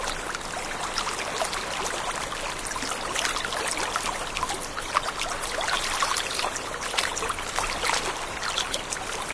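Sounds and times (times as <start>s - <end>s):
water lapping in swamps: 0.0s - 9.3s.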